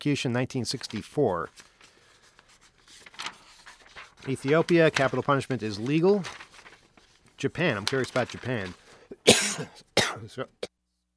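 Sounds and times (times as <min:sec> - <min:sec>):
speech: 0:00.0 - 0:01.7, 0:04.2 - 0:06.4, 0:07.4 - 0:10.7
person coughing: 0:09.1 - 0:10.7
throat-clearing rasp: 0:09.1 - 0:10.7.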